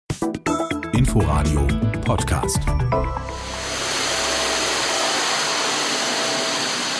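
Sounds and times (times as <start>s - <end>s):
speech: 1.2s - 4.0s
vacuum cleaner running over bare floor: 3.3s - 6.9s.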